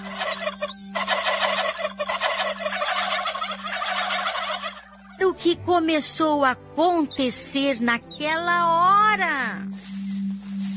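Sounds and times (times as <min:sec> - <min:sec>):
large flock of turkeys gobbling in a backyard: 0:00.0 - 0:05.2
speech: 0:05.4 - 0:09.9.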